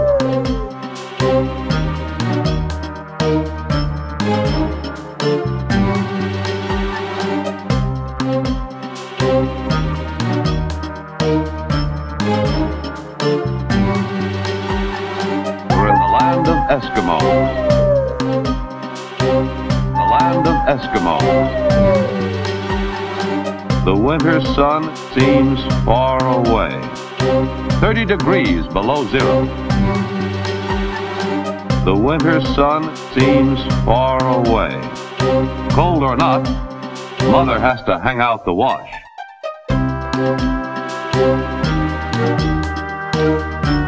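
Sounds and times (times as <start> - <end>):
husky dogs howling: 0.0 - 0.4, 15.7 - 18.3, 20.0 - 22.5
steady rhythmic music: 0.0 - 38.0, 38.7 - 43.8
speech: 28.1 - 30.1, 31.9 - 39.0.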